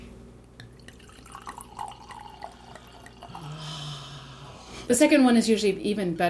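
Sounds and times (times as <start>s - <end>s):
wine pouring into a glass: 0.7s - 4.3s
speech: 4.9s - 6.2s.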